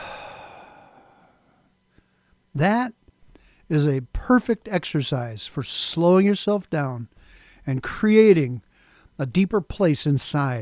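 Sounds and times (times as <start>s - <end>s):
slow deep exhale during a breathing exercise: 0.0s - 1.6s
speech: 2.6s - 3.0s, 3.7s - 10.6s.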